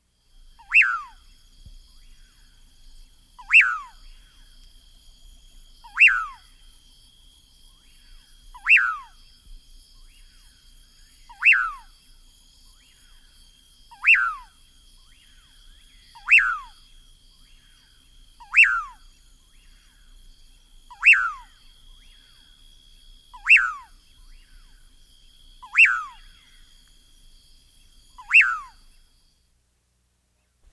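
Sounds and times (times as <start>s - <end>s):
Common Pauraque calling in South America: 0.6s - 1.4s, 3.4s - 4.5s, 5.8s - 6.6s, 7.8s - 9.2s, 10.0s - 12.0s, 13.9s - 20.2s, 20.9s - 22.6s, 23.3s - 26.8s, 28.0s - 29.1s.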